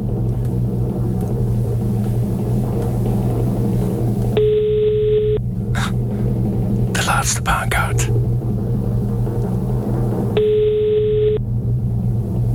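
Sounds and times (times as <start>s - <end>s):
constant low hum: 0.0s - 12.5s
phone ringback tone while a call is placed: 4.4s - 5.4s, 10.4s - 11.4s
speech: 7.2s - 8.2s.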